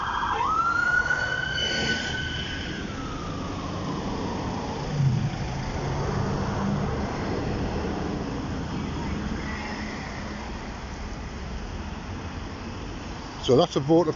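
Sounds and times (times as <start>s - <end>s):
patient transport ambulance siren wailing in traffic: 0.0s - 10.9s
traffic rumble: 0.0s - 14.1s
speech: 13.5s - 14.1s.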